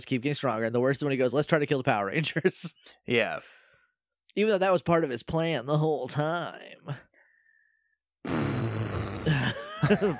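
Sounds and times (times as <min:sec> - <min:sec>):
speech: 0:00.0 - 0:03.6, 0:04.4 - 0:07.1, 0:09.2 - 0:10.1
person blowing a long sputtering raspberry imitating a fart: 0:08.2 - 0:09.6.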